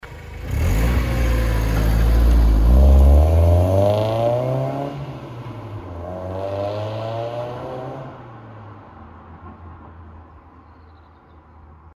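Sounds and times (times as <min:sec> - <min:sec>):
four-cylinder car pulling away: 0:00.0 - 0:08.4.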